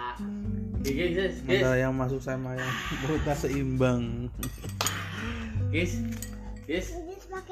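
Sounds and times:
speech: 0.2 - 7.5
spoon clinking against a dish: 4.3 - 5.3, 5.9 - 6.9.

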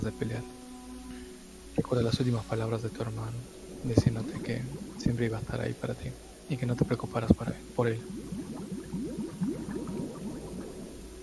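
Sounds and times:
speech: 0.0 - 1.1, 1.8 - 8.4
stream of air bubbles burbling underwater: 3.6 - 11.2.

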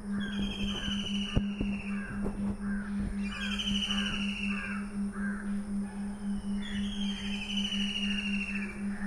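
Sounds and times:
crows cawing: 0.0 - 6.9, 8.8 - 9.0
steady low hum: 0.0 - 9.0.

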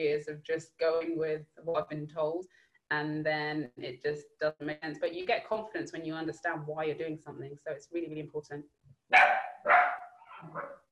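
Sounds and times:
speech: 0.0 - 9.5, 10.4 - 10.8
puppy barking: 9.1 - 10.8.

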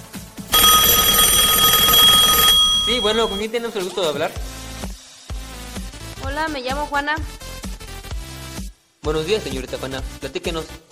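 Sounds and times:
telephone ringing with an incoming call: 0.5 - 3.5
speech: 3.0 - 4.5, 6.4 - 7.4, 9.0 - 10.9.

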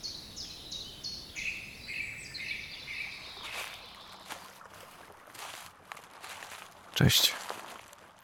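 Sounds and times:
bird repeating a bright chirping phrase: 0.0 - 4.5
footsteps crunching through dry fallen leaves: 3.2 - 8.2
speech: 7.0 - 7.4.

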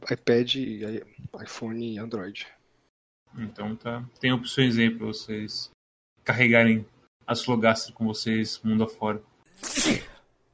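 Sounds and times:
speech: 0.1 - 2.6, 3.3 - 10.1
single sharp sneeze: 9.6 - 10.2.

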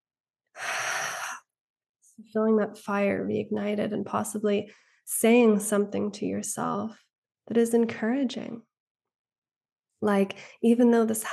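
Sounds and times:
deep breath taken during a guided breathing exercise: 0.6 - 1.4
speech: 2.2 - 8.7, 10.0 - 11.3.

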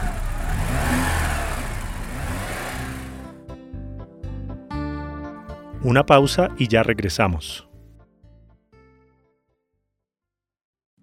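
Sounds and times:
car engine revving as driver steps on the accelerator: 0.0 - 3.4
speech: 5.8 - 7.7.

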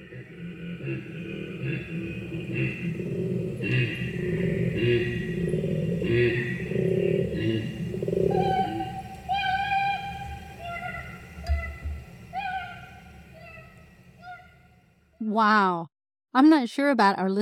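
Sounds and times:
koala calls with deep rough grunting pulses, played back from a video: 0.0 - 14.6
higher thinner koala wail: 7.5 - 15.7
speech: 16.6 - 17.4.

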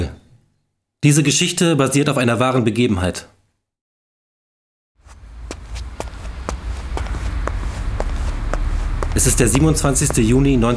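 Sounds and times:
speech: 1.0 - 3.3, 9.2 - 10.7
footsteps walking along a dark street: 5.0 - 10.7
low rumbling background: 5.2 - 10.7.

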